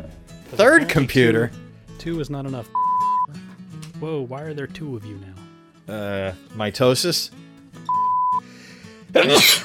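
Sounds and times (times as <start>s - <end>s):
speech: 0.5s - 2.8s, 4.0s - 7.4s, 9.2s - 9.6s
electronic beep: 2.8s - 3.3s, 7.9s - 8.4s
person sneezing: 9.2s - 9.6s.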